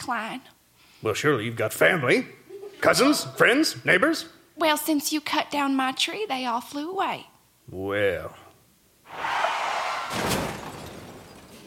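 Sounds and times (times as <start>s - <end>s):
speech: 0.0s - 8.4s
sleigh crashing into the side of an outhouse: 9.6s - 11.6s
debris clattering after a crash: 10.0s - 11.6s.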